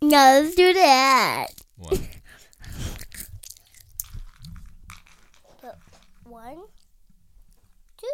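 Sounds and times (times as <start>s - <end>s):
speech: 0.1s - 2.1s
crunchy biting and chewing of food: 2.5s - 5.4s.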